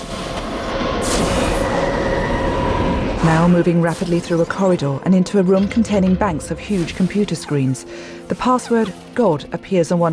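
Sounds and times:
subway train surging through a tunnel: 0.0s - 6.7s
speech: 3.2s - 10.1s.

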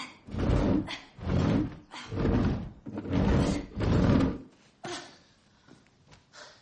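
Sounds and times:
large sofa shoved across the floor: 0.3s - 4.7s.

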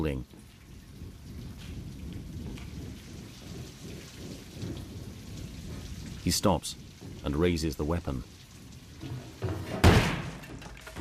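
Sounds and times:
speech: 0.0s - 0.4s, 6.2s - 8.3s
low rumbling background: 0.0s - 10.9s
door being kicked down to enter a candlelit room: 9.0s - 10.9s.

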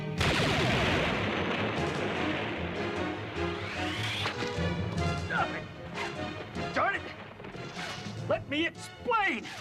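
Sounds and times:
blunderbuss gunshot: 0.2s - 4.7s, 5.9s - 8.3s
speech: 8.5s - 9.5s.

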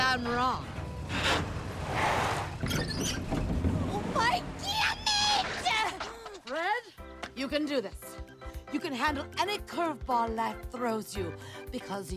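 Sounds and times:
beat-up bus engine rumbling: 0.0s - 5.5s
speech: 2.8s - 3.5s, 6.8s - 8.1s, 8.7s - 12.1s.

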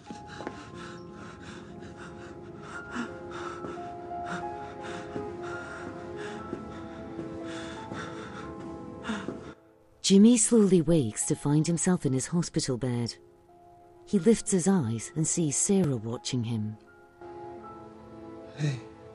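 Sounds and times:
bloodied man breathing rapidly and sobbing in a corridor: 0.0s - 9.6s
steady tonal background: 0.0s - 19.1s
speech: 10.1s - 13.4s, 14.1s - 16.9s, 18.6s - 18.9s.

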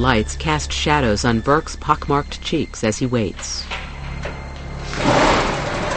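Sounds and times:
speech: 0.0s - 3.9s
barred prison cell door sliding open along its track: 3.3s - 5.9s.

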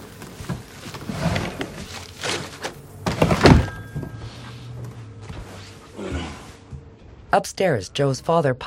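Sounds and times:
rustling and handling noises: 0.0s - 6.9s
speech: 7.3s - 8.6s.

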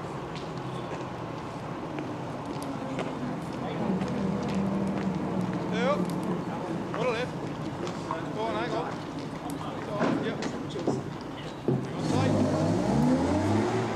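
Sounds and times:
truck with a white star stenciled on its front driving past on a road: 0.0s - 8.7s, 11.7s - 13.9s
indistinct voices murmuring: 0.0s - 13.0s
steady outdoor noise: 0.0s - 13.9s.

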